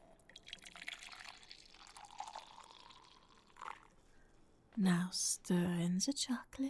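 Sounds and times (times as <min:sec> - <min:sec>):
milk pouring in a steady stream: 0:00.0 - 0:04.0
speech: 0:04.8 - 0:06.6.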